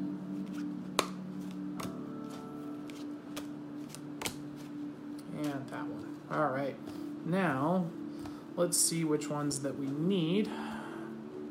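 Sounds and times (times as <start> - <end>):
playing cards drawn and handled from a deck during a card reading: 0.3 - 7.1
speech: 5.7 - 8.0, 8.6 - 10.7.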